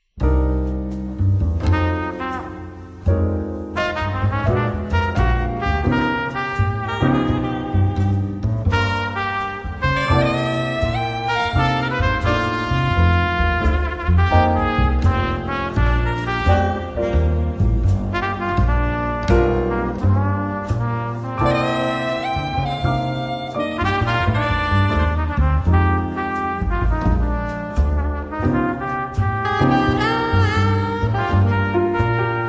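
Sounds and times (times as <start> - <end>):
bass: 0.0 - 32.4
rhythm: 0.0 - 32.4
counter melody: 0.2 - 32.4
melody: 21.5 - 24.1.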